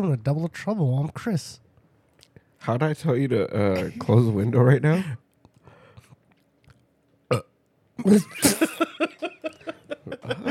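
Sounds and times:
speech: 0:00.0 - 0:01.6, 0:02.6 - 0:05.2, 0:07.3 - 0:10.5
loud burp: 0:07.3 - 0:08.8
rhythmic bursts of laughter: 0:08.0 - 0:10.5.

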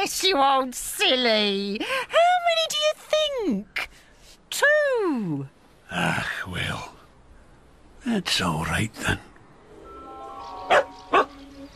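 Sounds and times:
speech: 0:00.1 - 0:03.8, 0:04.5 - 0:06.9, 0:08.0 - 0:09.3
dog barking: 0:10.7 - 0:11.4.

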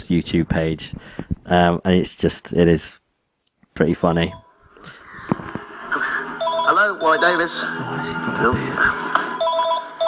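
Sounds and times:
speech: 0:00.1 - 0:03.0, 0:03.8 - 0:05.0, 0:07.0 - 0:09.2
office telephone ringing with an electronic trill: 0:06.2 - 0:07.8, 0:09.2 - 0:10.0
indistinct voice-like sound: 0:07.4 - 0:09.1.

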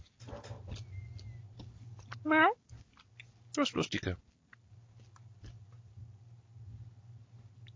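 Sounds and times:
steady low hum: 0:00.0 - 0:03.2, 0:04.5 - 0:07.7
crunchy chewing of a mini chocolate biscuit bar from an Advent calendar: 0:00.0 - 0:03.6, 0:04.3 - 0:05.8
speech: 0:02.2 - 0:02.6, 0:03.6 - 0:04.2.

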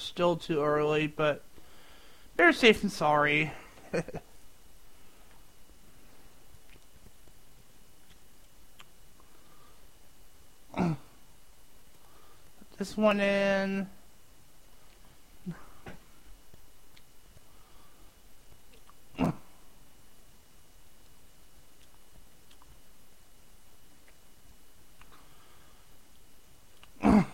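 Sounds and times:
faint hiss: 0:00.0 - 0:27.3
speech: 0:00.1 - 0:01.5, 0:02.4 - 0:04.3, 0:12.8 - 0:14.0
person clearing throat: 0:10.7 - 0:11.1, 0:19.2 - 0:19.5, 0:27.0 - 0:27.3.

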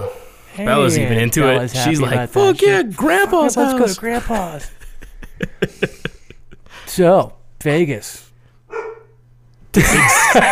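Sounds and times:
dog barking: 0:00.0 - 0:00.3, 0:08.7 - 0:09.2
speech: 0:00.6 - 0:04.8, 0:07.0 - 0:08.3, 0:09.8 - 0:10.5
laughter: 0:01.8 - 0:06.8, 0:09.8 - 0:10.5
dog yelping: 0:08.7 - 0:09.2.

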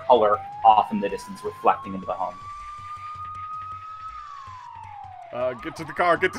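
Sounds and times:
police siren wailing: 0:00.0 - 0:06.3
speech: 0:00.1 - 0:02.5, 0:05.3 - 0:06.3.

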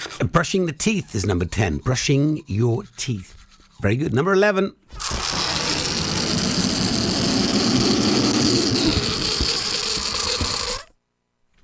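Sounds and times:
speech: 0:00.2 - 0:04.9
balloon deflating with rush of air and fluttering rattle: 0:04.9 - 0:11.0.

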